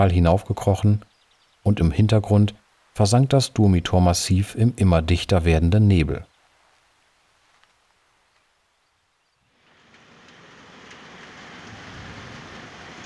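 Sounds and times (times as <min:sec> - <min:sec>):
speech: 0:00.0 - 0:06.3
steady rain: 0:00.0 - 0:13.0.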